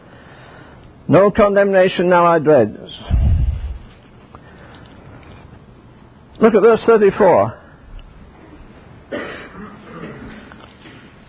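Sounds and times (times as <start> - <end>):
speech: 1.1 - 3.3, 6.4 - 7.6
rough vocal noise: 3.0 - 4.0
abrupt cough or throat clear: 9.1 - 10.6.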